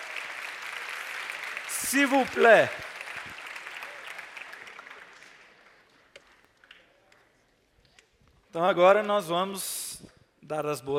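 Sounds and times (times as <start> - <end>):
audience applause for a guest of honor: 0.0 - 6.8
speech: 1.9 - 2.9, 8.5 - 9.8, 10.5 - 10.9.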